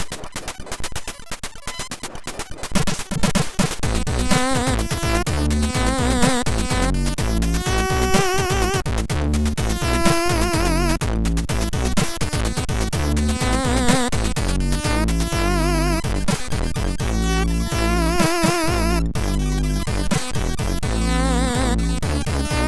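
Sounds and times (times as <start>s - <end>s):
jazz on a SID sound chip: 0.0s - 22.6s.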